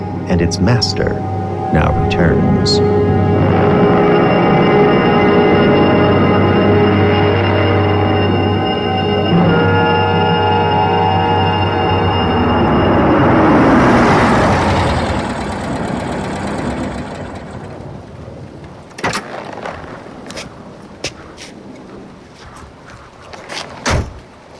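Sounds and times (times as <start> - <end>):
black limousine engine drone driving slowly up a long tree-covered drive: 0.0 - 18.5
brighter rushing noise: 0.0 - 18.5
whirring hum of a limousine: 0.0 - 18.5
speech: 0.3 - 3.1.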